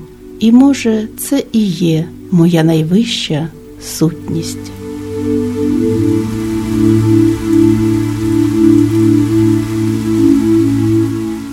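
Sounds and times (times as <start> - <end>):
steady rain pattering: 0.0 - 11.5
speech: 0.4 - 5.4
low sustained droning hum: 3.6 - 11.4.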